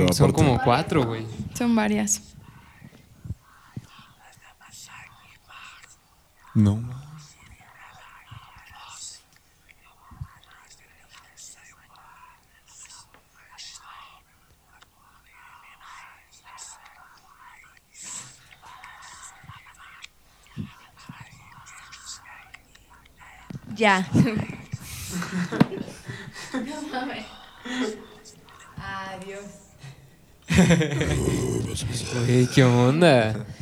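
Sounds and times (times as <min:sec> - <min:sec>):
faint breathy whispering voices: 0:00.0 - 0:33.5
speech: 0:00.1 - 0:02.4, 0:06.6 - 0:07.0, 0:23.8 - 0:24.6, 0:25.2 - 0:25.9, 0:26.5 - 0:28.1, 0:30.5 - 0:33.5
soft hissy bursts: 0:01.0 - 0:30.9
laughter: 0:24.9 - 0:27.0, 0:30.5 - 0:31.4.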